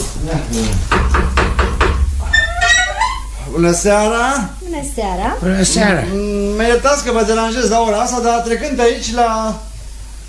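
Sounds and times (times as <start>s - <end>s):
speech: 0.2s - 1.2s, 3.5s - 9.7s
firm knocking on a door: 0.8s - 2.9s.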